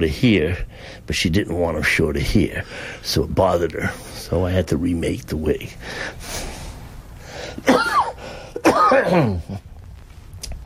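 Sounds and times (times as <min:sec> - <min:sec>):
speech: 0:00.0 - 0:06.5, 0:08.9 - 0:09.7
harsh throaty coughs: 0:07.6 - 0:09.6.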